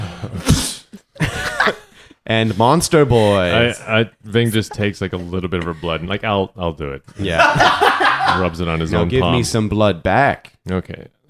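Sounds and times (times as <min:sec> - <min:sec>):
person acting out an exaggerated sneeze into a hand: 0:00.3 - 0:00.9
laughter: 0:01.2 - 0:02.1, 0:07.1 - 0:09.2
speech: 0:01.7 - 0:11.2.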